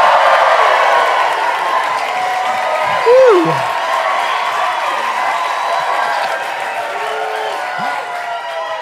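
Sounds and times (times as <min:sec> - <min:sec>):
live studio audience applauding on a stage in Gowanus, Brooklyn: 0:00.0 - 0:08.8.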